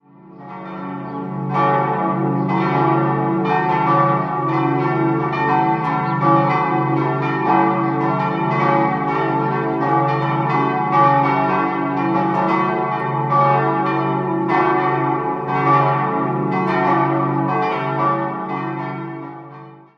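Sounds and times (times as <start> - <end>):
parish church bells in Hahnbach: 0.0 - 19.9.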